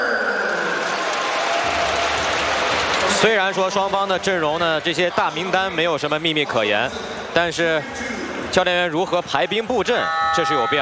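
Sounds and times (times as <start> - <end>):
large basketball arena crowd clapping and cheering: 0.3 - 6.0
speech: 3.2 - 10.8.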